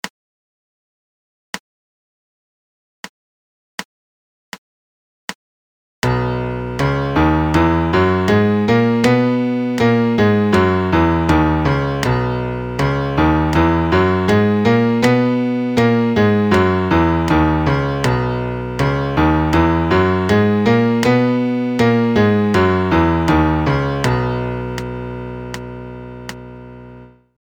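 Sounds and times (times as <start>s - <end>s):
MIDI major scale in B: 6.1s - 26.8s.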